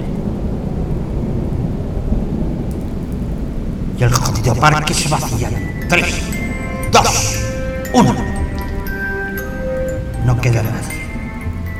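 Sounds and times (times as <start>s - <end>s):
deep continuous rumbling thunder: 0.0s - 9.0s
steady pouring rain: 0.0s - 11.7s
speech: 4.0s - 6.3s, 7.9s - 8.3s, 10.3s - 11.0s.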